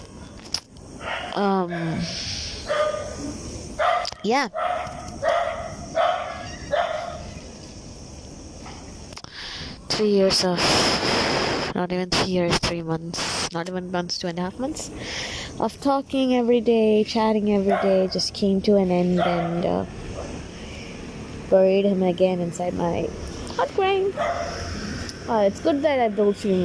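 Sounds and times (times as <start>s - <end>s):
dogs barking and yelping: 1.0s - 2.0s, 2.6s - 7.6s, 17.6s - 18.2s, 19.2s - 20.4s, 24.1s - 24.7s
speech: 1.4s - 3.5s, 4.2s - 4.7s, 10.0s - 11.2s, 11.8s - 20.0s, 21.5s - 24.6s, 25.3s - 26.6s.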